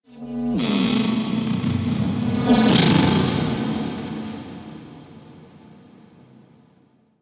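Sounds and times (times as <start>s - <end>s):
medium tech texture ambience: 0.3s - 5.4s.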